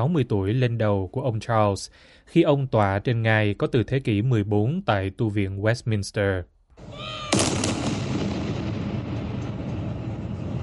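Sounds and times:
speech: 0.0s - 7.3s
outdoor noise: 6.7s - 10.6s
heavy ceremonial gun salute cannon shot with rumbling echo: 7.3s - 10.6s.

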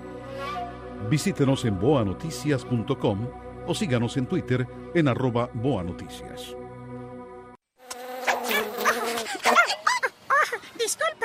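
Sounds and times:
speech: 1.1s - 6.6s
mosquito buzzing: 7.8s - 10.0s
high-pitched animated voices: 8.3s - 11.2s.

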